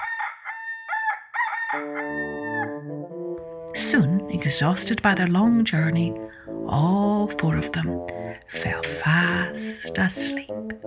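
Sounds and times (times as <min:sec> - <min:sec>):
rooster crowing: 0:00.0 - 0:02.8
speech: 0:01.7 - 0:02.2, 0:03.8 - 0:10.8.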